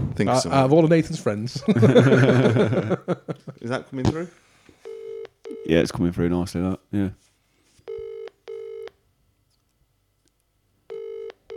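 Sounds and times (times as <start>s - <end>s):
speech: 0.2s - 4.4s, 5.6s - 7.2s
laughter: 1.4s - 4.0s
phone call ringing out over a speakerphone: 4.8s - 5.7s, 7.9s - 8.9s, 10.9s - 11.5s.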